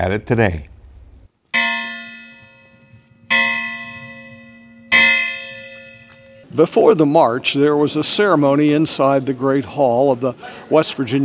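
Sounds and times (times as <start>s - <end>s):
speech: 0.0s - 0.7s, 6.6s - 11.2s
state bell at the West Virginia Capitol tolling: 1.6s - 6.5s.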